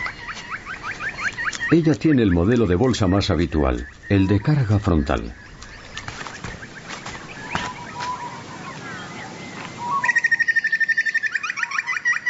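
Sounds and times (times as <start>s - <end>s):
wings fluttering: 0.0s - 10.5s
bird calling from a branch: 0.0s - 12.2s
speech: 1.7s - 5.4s.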